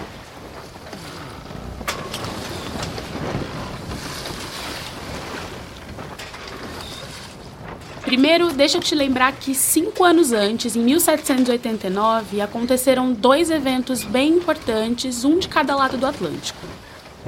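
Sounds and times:
wooden creaks and knocks of a sailing ship: 0.0s - 8.3s
gusting wind: 0.0s - 17.2s
rough sea waves around a sailing ship: 0.0s - 17.2s
speech: 8.1s - 16.9s.

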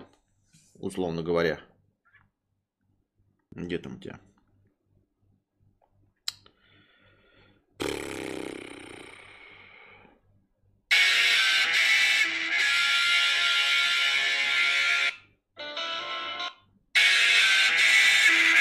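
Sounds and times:
speech: 0.8s - 1.7s, 3.6s - 4.3s
loud harsh phone ringtone: 10.9s - 18.5s.

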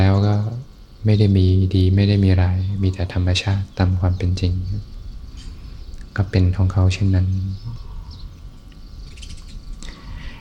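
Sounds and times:
bird chirps and song phrases: 0.0s - 10.3s
steady low outdoor hum: 0.0s - 10.3s
speech: 1.0s - 5.0s, 6.2s - 7.8s.

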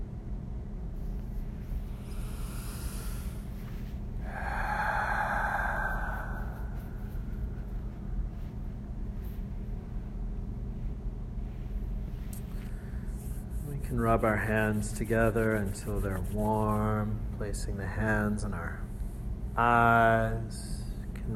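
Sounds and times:
steady low hum: 0.0s - 21.3s
deep breath in through the nose and out through the mouth during guided meditation: 1.0s - 8.7s
speech: 13.9s - 18.8s, 19.6s - 20.7s.

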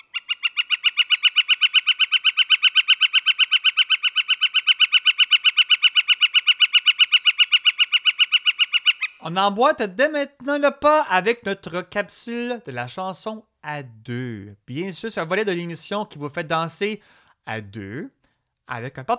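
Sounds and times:
woodpecker calling: 0.0s - 10.6s
speech: 9.2s - 19.1s.

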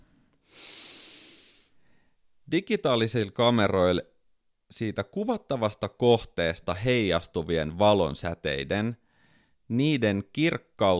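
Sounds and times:
deep breath drawn in: 0.0s - 2.3s, 9.0s - 9.7s
speech: 2.5s - 4.1s, 4.7s - 9.0s, 9.7s - 10.9s.

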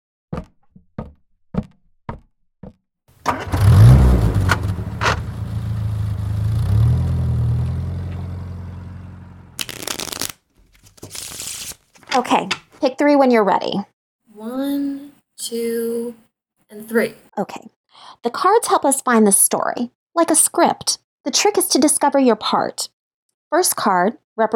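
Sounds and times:
sharp knocks and clicks: 0.3s - 2.8s
car engine starting, idling and revving: 3.2s - 9.6s
speech: 12.2s - 24.5s.

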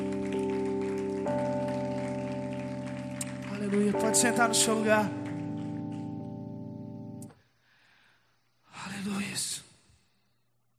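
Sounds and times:
large crowd clapping and applauding: 0.0s - 6.8s
loud organ-like keyboard chords: 0.0s - 7.4s
speech: 3.7s - 5.2s.

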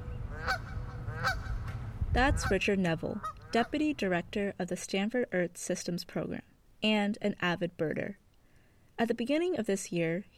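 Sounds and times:
large flock of birds calling with goose-like honks at a wildlife refuge: 0.0s - 3.8s
steady low rumble of outdoor noise: 0.0s - 4.7s
speech: 2.2s - 8.2s, 9.0s - 10.3s.

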